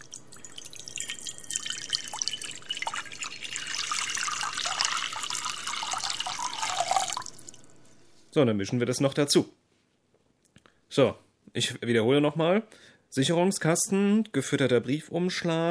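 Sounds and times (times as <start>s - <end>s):
water poured into an empty bowl: 0.0s - 7.7s
speech: 8.4s - 9.6s, 11.0s - 15.7s.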